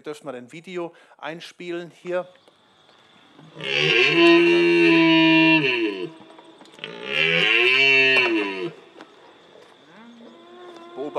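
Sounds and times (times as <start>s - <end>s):
speech: 0.0s - 2.5s, 3.4s - 5.0s
red deer stag bellowing in a played video: 3.4s - 11.1s.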